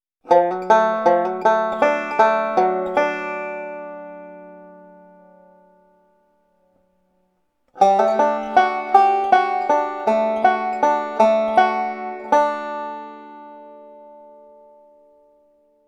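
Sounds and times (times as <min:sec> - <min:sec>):
instrument fill licks in D: 0:00.3 - 0:05.7, 0:07.8 - 0:14.6.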